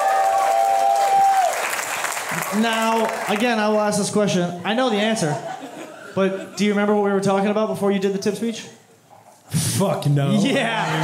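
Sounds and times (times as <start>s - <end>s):
audience applause at a comedy taping: 0.0s - 3.8s
speech: 2.4s - 5.6s, 6.2s - 8.8s, 9.5s - 11.0s
laughter: 4.7s - 7.1s, 10.3s - 11.0s.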